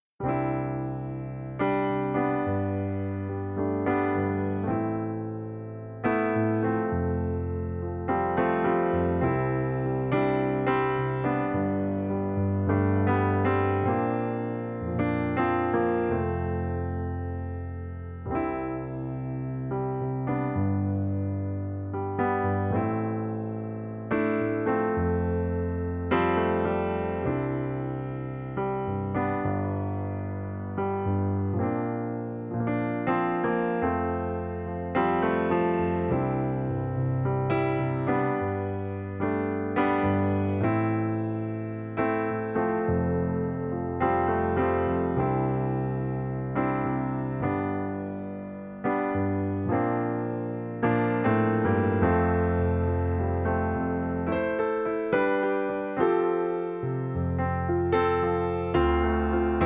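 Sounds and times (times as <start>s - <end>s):
Yamaha C7 digital piano: 0.0s - 59.6s.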